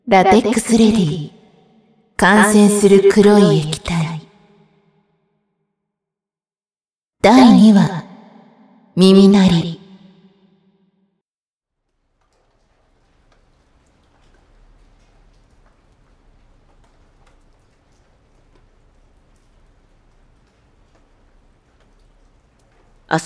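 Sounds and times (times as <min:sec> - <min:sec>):
speech: 0:00.1 - 0:01.4, 0:02.2 - 0:04.0, 0:07.2 - 0:08.0, 0:09.0 - 0:09.8
steady rain falling with drops striking a surface: 0:12.1 - 0:23.2.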